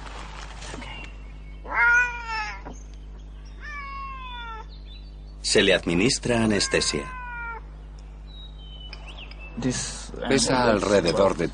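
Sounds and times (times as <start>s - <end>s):
captured wildcat meowing: 1.6s - 2.7s, 3.6s - 4.7s, 6.5s - 7.7s
speech: 5.5s - 7.2s, 9.6s - 11.5s.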